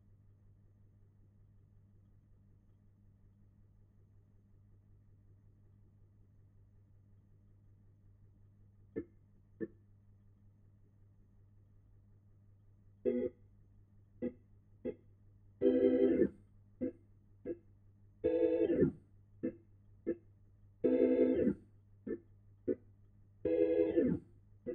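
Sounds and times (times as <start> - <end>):
Hammond organ: 13.0 - 13.3, 15.6 - 17.6, 18.2 - 20.2, 20.8 - 22.8, 23.4 - 24.7.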